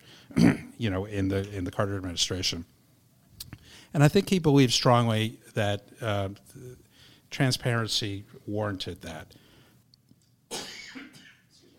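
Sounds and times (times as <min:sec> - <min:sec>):
person coughing harshly: 0:00.3 - 0:00.7, 0:10.5 - 0:11.6
throat-clearing rasp: 0:00.3 - 0:00.8
speech: 0:00.3 - 0:02.8, 0:03.9 - 0:09.4.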